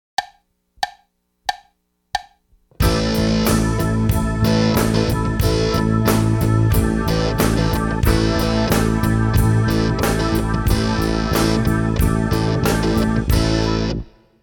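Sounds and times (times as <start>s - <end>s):
drums: 2.8s - 14.1s.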